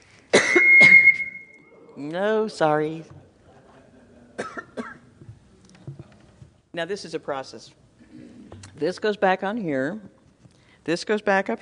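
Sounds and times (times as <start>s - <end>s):
person coughing: 0.3s - 1.0s, 4.4s - 5.0s
faint steady high tone humming: 0.4s - 1.8s
speech: 2.0s - 3.2s, 6.8s - 7.8s, 8.8s - 10.2s, 10.8s - 11.6s.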